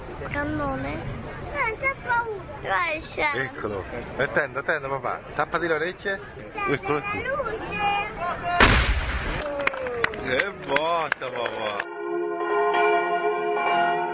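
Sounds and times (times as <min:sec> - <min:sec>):
crowd chatter and voices: 0:00.0 - 0:14.1
cannon shot: 0:08.6 - 0:09.4
church bells ringing: 0:11.8 - 0:14.1.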